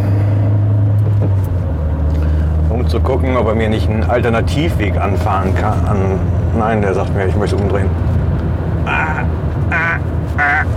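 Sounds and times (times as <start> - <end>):
car engine rumbling while driving onto a motorway: 0.0 - 10.7
speech: 2.9 - 8.2.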